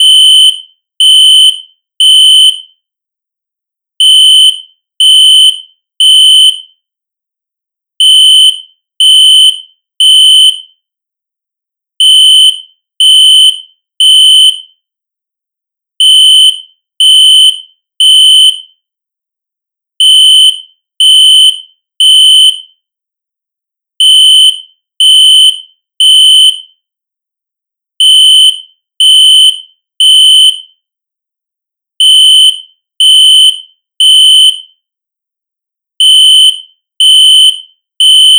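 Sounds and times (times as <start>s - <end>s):
synthesized fire alarm: 0.0s - 2.8s, 4.0s - 6.8s, 8.0s - 10.8s, 12.0s - 14.8s, 16.0s - 18.8s, 20.0s - 22.8s, 24.0s - 26.8s, 28.0s - 30.8s, 32.0s - 34.8s, 36.0s - 38.3s.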